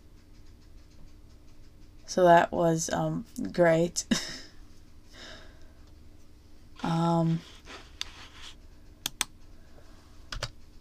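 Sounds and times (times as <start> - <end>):
low hum: 0.0 - 10.8
speech: 2.1 - 4.2, 6.9 - 7.5
typing on a computer keyboard: 9.0 - 9.4, 10.3 - 10.6.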